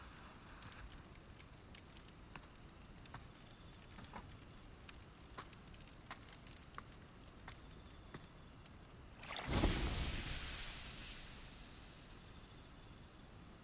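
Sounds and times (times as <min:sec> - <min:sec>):
campfire popping and crackling: 0:00.2 - 0:07.5, 0:09.2 - 0:12.8
campfire hissing while being put out at a campsite: 0:09.2 - 0:13.5.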